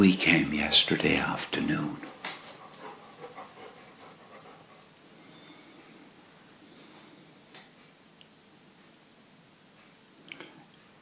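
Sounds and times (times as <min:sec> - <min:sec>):
speech: 0:00.0 - 0:02.2
English setter dog panting: 0:02.0 - 0:05.0.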